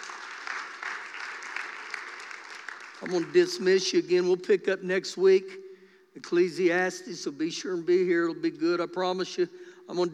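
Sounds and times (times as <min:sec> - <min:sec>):
audience clapping: 0:00.0 - 0:03.8
speech: 0:03.0 - 0:05.6, 0:06.2 - 0:10.1.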